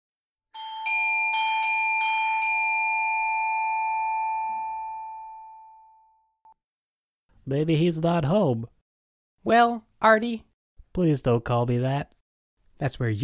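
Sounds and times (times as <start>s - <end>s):
doorbell chiming: 0.6s - 6.5s
speech: 7.5s - 8.8s, 9.4s - 12.2s, 12.8s - 13.2s.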